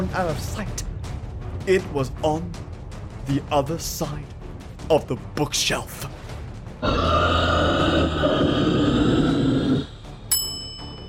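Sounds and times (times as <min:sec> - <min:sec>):
speech: 0:00.1 - 0:00.8, 0:01.6 - 0:02.7, 0:03.3 - 0:06.2, 0:06.8 - 0:07.4
low rough grunting: 0:06.8 - 0:10.1
hanging bell ringing: 0:10.3 - 0:11.0.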